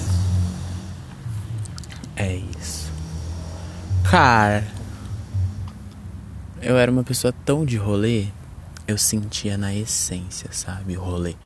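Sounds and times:
heavy bass music from a passing car: 0:00.0 - 0:07.5
speech: 0:02.2 - 0:03.0, 0:04.1 - 0:04.8, 0:06.6 - 0:11.4.

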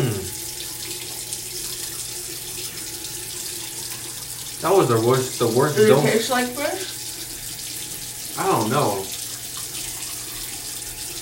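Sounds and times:
hot water running from a faucet: 0:00.0 - 0:11.2
speech: 0:04.6 - 0:07.0, 0:08.4 - 0:09.1.

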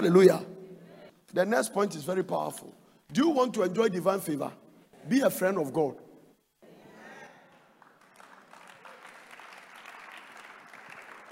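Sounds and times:
speech: 0:00.0 - 0:00.5, 0:01.3 - 0:06.0
audience applauding with many hands: 0:07.4 - 0:11.2.

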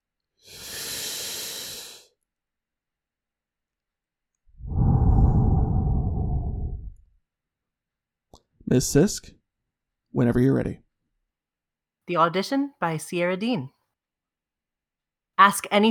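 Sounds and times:
deep cleansing breath inhale and exhale: 0:00.4 - 0:02.2, 0:04.6 - 0:07.0
speech: 0:08.7 - 0:09.4, 0:10.1 - 0:10.8, 0:12.1 - 0:13.8, 0:15.4 - 0:15.8.

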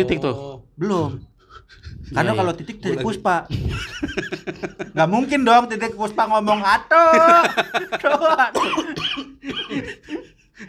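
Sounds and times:
speech: 0:00.0 - 0:10.6
person laughing: 0:03.5 - 0:05.0, 0:07.0 - 0:10.6
person coughing after inhaling smoke: 0:08.4 - 0:10.2.

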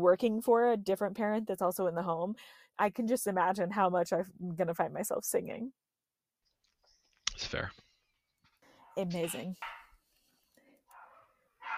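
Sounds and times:
speech: 0:00.0 - 0:05.8, 0:07.4 - 0:07.8, 0:09.0 - 0:09.8
dog giving a short sharp bark: 0:10.9 - 0:11.7.

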